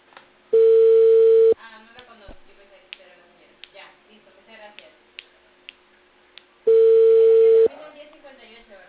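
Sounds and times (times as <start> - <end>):
ringback tone of an outgoing telephone call: 0.6 - 1.6, 6.7 - 7.7.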